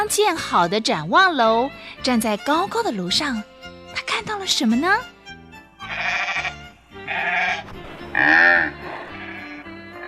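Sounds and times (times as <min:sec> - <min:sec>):
speech: 0:00.0 - 0:05.1, 0:08.1 - 0:08.8
sheep bleating: 0:05.8 - 0:10.0.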